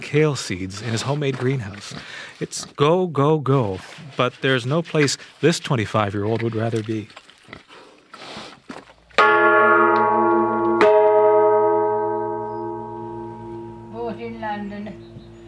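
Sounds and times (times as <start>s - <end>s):
speech: 0.0s - 7.6s, 14.3s - 15.1s
gong struck with shimmering metallic tone: 9.2s - 15.0s.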